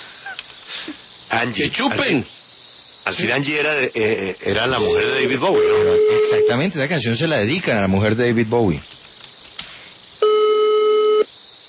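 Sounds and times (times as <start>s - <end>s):
speech: 1.3s - 2.4s, 3.1s - 8.9s
telephone ring tone on an outgoing call: 4.8s - 6.6s, 10.2s - 11.3s.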